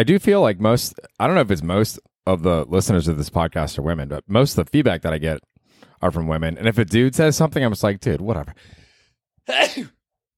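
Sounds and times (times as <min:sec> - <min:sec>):
speech: 0:00.0 - 0:08.8, 0:09.5 - 0:10.0
sneeze: 0:09.5 - 0:10.0.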